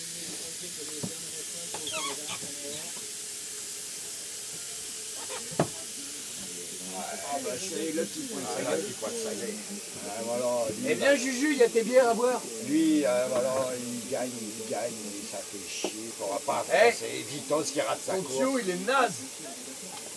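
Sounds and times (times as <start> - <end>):
steam hissing from lifted pressure cooker valve: 0.0 - 20.1
speech: 7.4 - 19.4.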